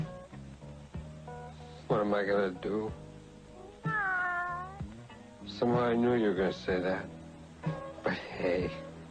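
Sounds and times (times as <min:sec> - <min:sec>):
speech: 0:01.9 - 0:03.0, 0:05.6 - 0:07.2, 0:08.0 - 0:08.9
cat meowing: 0:03.8 - 0:04.9.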